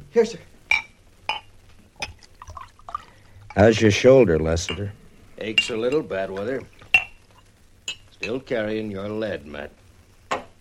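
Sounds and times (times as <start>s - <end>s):
speech: 0.1s - 0.6s, 3.6s - 6.8s, 8.2s - 10.4s
bottle clinking against a glass at a bar: 0.7s - 2.2s, 4.6s - 6.2s, 6.9s - 7.2s, 7.8s - 8.4s
drink being poured at a bar: 2.0s - 3.8s.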